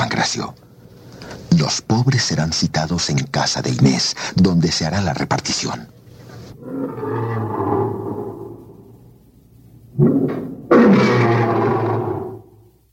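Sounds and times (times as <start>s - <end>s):
speech: 0.0s - 0.6s, 1.2s - 6.0s, 6.6s - 7.6s
lions roaring in the vivarium of an amphitheatre: 6.5s - 8.9s, 9.9s - 12.6s.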